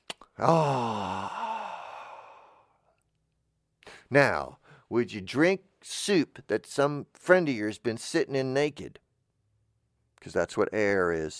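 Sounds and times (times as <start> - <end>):
speech: 0.4 - 1.3, 4.1 - 9.0, 10.2 - 11.3
deep breath of air: 0.4 - 2.9.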